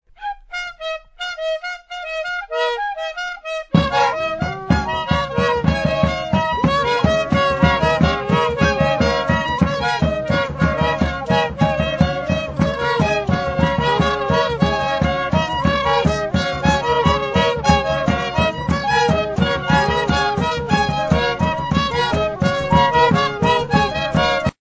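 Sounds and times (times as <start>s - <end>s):
wind ensemble playing in the Mandara Mountains of Cameroon: 0.8s - 24.6s.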